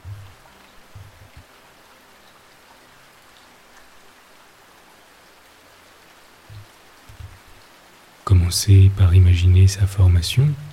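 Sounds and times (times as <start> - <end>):
low dull thumps: 0.0 - 1.4, 6.5 - 7.4
steady rain pattering on a roof: 0.0 - 10.7
speech: 8.3 - 10.7.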